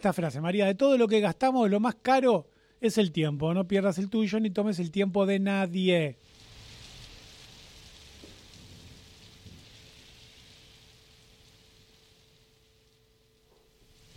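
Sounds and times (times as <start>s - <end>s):
speech: 0.0s - 6.3s
heavy rain pouring down: 6.2s - 14.1s
low thunder rumbling: 6.3s - 13.0s.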